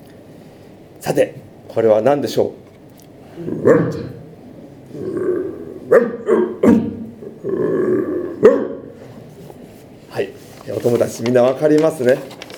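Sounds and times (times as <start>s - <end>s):
speech: 1.0s - 2.6s, 3.4s - 4.2s, 10.8s - 12.4s
lower rumbling growl-like sounds: 3.4s - 4.3s, 4.9s - 9.0s
dog barking in short sharp bursts: 5.9s - 6.9s, 8.4s - 8.9s.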